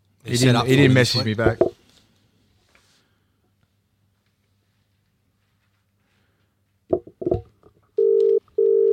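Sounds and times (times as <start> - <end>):
speech: 0.2 - 1.7
telephone ringback tone of an outgoing call: 8.0 - 8.9.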